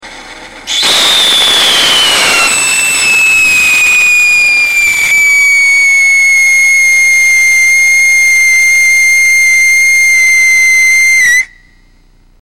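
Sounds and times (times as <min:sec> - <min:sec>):
whistle rocket with copper oxide and sodium salicylate core burning: 0:00.7 - 0:12.0.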